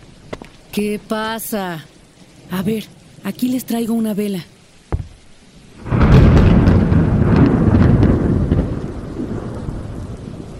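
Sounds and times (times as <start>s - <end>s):
heavy rain: 0.0s - 10.5s
wind: 0.0s - 10.5s
speech: 0.8s - 1.9s, 2.5s - 4.5s
loud rumble of thunder: 4.9s - 10.5s.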